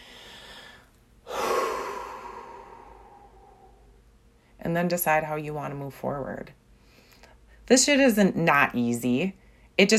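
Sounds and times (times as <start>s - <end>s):
deep airy inhale: 0.0s - 4.6s
speech: 4.7s - 6.6s, 7.7s - 9.9s.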